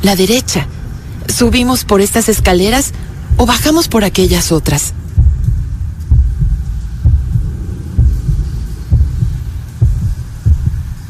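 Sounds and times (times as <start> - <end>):
speech: 0.0 - 5.0
low rumbling hum: 0.0 - 11.0
deep heartbeat thudding in paired beats: 2.2 - 11.0.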